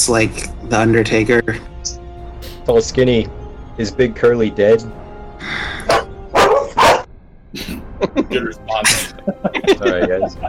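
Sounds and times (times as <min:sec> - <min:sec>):
speech: 0:00.1 - 0:01.7, 0:02.7 - 0:05.0, 0:09.3 - 0:10.4
dog barking: 0:05.8 - 0:07.1
laughter: 0:07.6 - 0:10.4.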